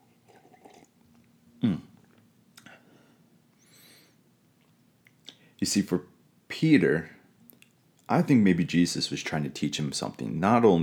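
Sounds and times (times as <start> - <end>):
sipping hot tea: 0.0 - 1.2
faint cup sounds: 0.0 - 1.3
faint mouth sounds: 1.6 - 2.1
speech: 5.6 - 7.2, 8.1 - 10.8.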